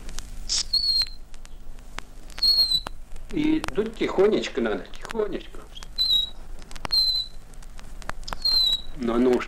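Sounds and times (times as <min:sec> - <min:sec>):
sharp clicks: 0:00.1 - 0:04.3, 0:04.9 - 0:09.4
bird-call whistle imitating a nightingale: 0:00.5 - 0:01.2, 0:02.3 - 0:03.0, 0:06.0 - 0:07.4, 0:08.3 - 0:09.0
speech: 0:03.3 - 0:05.6, 0:09.0 - 0:09.4.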